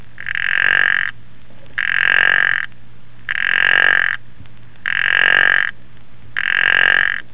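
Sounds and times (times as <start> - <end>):
Zanzibar puddle frog calling: 0.2 - 1.2, 1.8 - 2.7, 3.3 - 4.2, 4.8 - 5.8, 6.4 - 7.3.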